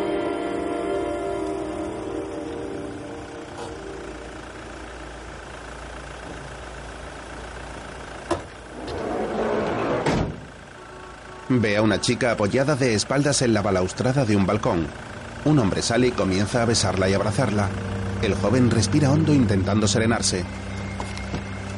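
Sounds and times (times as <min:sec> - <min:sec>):
taxi engine idling on a city street: 0:00.0 - 0:21.7
taxi car door opening: 0:08.3 - 0:10.5
speech: 0:11.5 - 0:20.7.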